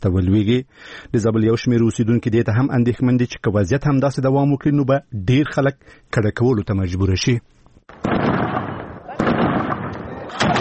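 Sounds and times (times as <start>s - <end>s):
speech: 0.0s - 8.2s
gunfire in fighting between Afghan forces and Taliban fighters: 7.9s - 10.5s.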